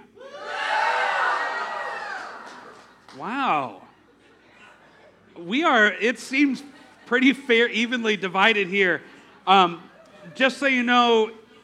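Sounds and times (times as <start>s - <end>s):
audience cheering and whooping: 0.2s - 2.9s
speech: 5.5s - 11.4s.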